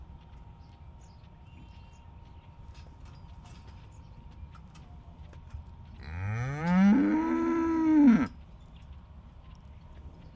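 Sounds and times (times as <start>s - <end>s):
impatient cattle mooing by a roadside pasture: 6.0s - 8.3s.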